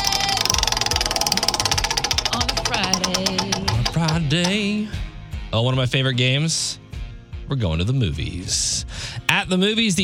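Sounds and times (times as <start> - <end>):
prize wheel spinning in a trivia game: 0.0 - 4.9
speech: 4.3 - 6.8, 7.5 - 10.0.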